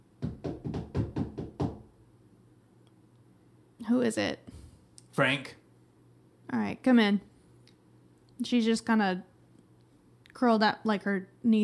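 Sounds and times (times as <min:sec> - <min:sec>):
firm knocking on a door: 0:00.2 - 0:02.0
speech: 0:03.8 - 0:04.6, 0:05.2 - 0:05.6, 0:06.5 - 0:07.3, 0:08.4 - 0:09.3, 0:10.4 - 0:11.6.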